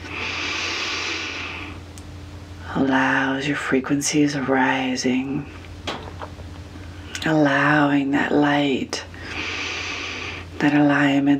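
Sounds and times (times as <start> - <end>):
long deep breath taken during a guided breathing exercise: 0.0 - 1.8, 9.2 - 10.5
speech: 2.8 - 5.6, 7.2 - 9.1, 10.6 - 11.3.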